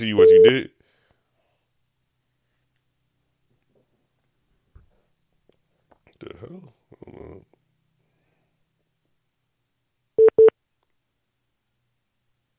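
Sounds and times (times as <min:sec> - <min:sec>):
speech: 0:00.0 - 0:00.8
call-waiting tone on phone line: 0:00.2 - 0:00.6, 0:10.2 - 0:10.5.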